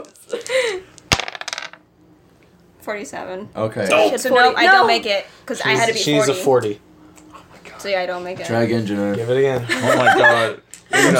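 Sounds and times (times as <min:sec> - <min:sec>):
dice rolling on a hard table: 0:01.0 - 0:01.8
speech: 0:02.8 - 0:06.8, 0:07.8 - 0:11.1
laughter: 0:09.6 - 0:11.1.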